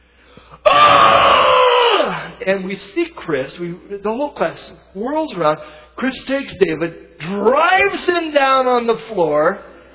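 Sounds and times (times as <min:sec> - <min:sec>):
raw primal scream: 0:00.6 - 0:02.4
speech: 0:02.4 - 0:09.7.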